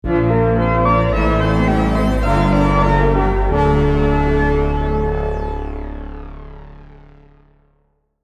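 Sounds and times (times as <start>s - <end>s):
item fanfare: 0.1s - 5.8s.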